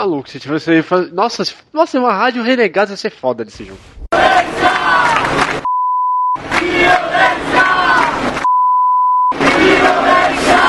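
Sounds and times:
speech: 0.0s - 4.0s
loud crowd shouting and chanting: 4.2s - 5.5s, 6.4s - 8.4s, 9.3s - 10.6s
steady pure censor bleep over profanity: 5.6s - 6.4s, 8.4s - 9.4s.

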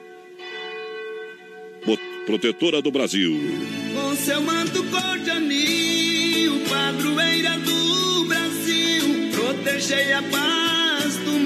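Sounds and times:
cathedral church bell ringing: 0.0s - 3.8s
speech: 1.8s - 11.4s.

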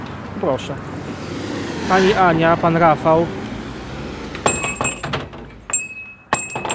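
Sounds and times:
speech: 0.4s - 1.3s, 1.9s - 3.4s
small old-style shop doorbell jingling: 4.5s - 6.7s.

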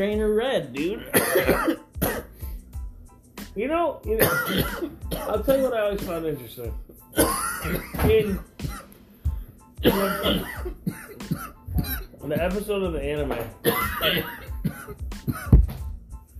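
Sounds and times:
speech: 0.0s - 2.2s, 3.6s - 8.8s, 9.8s - 11.4s, 12.2s - 15.6s
person coughing hard in a rough fit: 1.0s - 2.4s, 4.2s - 5.4s, 7.2s - 8.9s, 9.8s - 12.5s, 13.6s - 15.6s.

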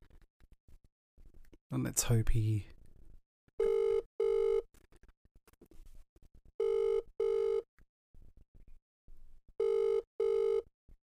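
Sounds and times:
speech: 1.7s - 2.7s
phone ringback tone heard through a speakerphone: 3.6s - 4.6s, 6.6s - 7.6s, 9.6s - 10.7s.

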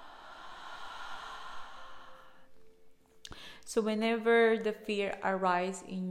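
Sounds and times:
slow deep inhale and exhale during a guided breathing exercise: 0.0s - 3.7s
speech: 3.7s - 6.1s.

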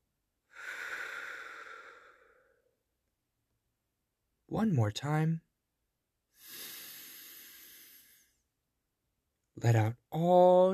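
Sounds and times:
deep breath in and out: 0.5s - 2.8s, 6.3s - 8.5s
speech: 4.5s - 5.5s, 9.6s - 10.7s.

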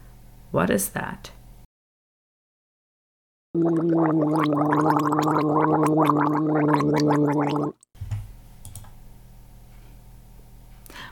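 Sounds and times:
speech: 0.5s - 1.4s, 3.6s - 7.8s
person gargling water: 3.6s - 7.8s.

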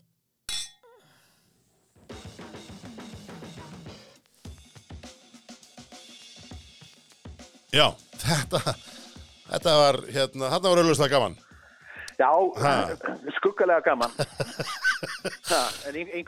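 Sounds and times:
glasses of beer clinking in a toast: 0.5s - 0.8s
speech: 7.7s - 8.9s, 9.5s - 11.4s, 12.2s - 16.2s
laughter: 8.2s - 9.0s, 11.9s - 16.2s.

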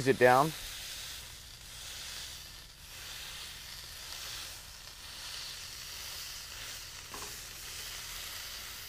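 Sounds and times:
speech: 0.0s - 0.6s
seasoned beef patty sizzling in a hot pan on a medium-low burner: 0.0s - 8.8s.

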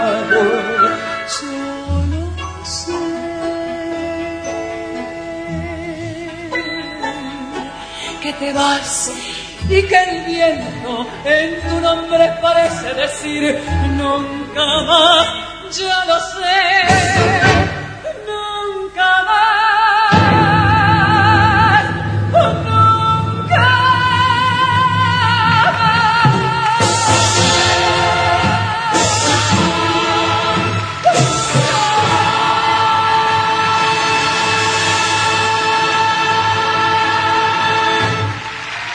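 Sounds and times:
vocal line in a tango song: 0.0s - 38.4s
live tango song with full orchestra, strings and bass: 0.0s - 38.7s
speech: 8.4s - 17.4s.

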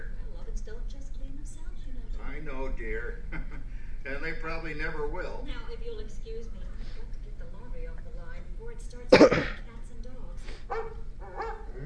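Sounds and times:
low hum: 0.0s - 11.8s
speech: 2.4s - 9.7s
dog barking: 10.7s - 11.8s.

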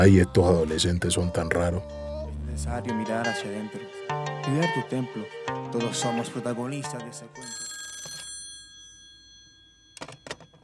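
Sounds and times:
speech: 0.0s - 2.0s, 2.6s - 7.7s
telephone ringing with a bright metallic trill: 5.8s - 10.6s.

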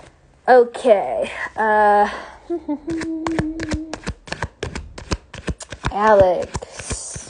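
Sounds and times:
speech: 0.5s - 3.8s, 6.0s - 6.9s
deck of tarot cards shuffled: 2.8s - 7.2s.

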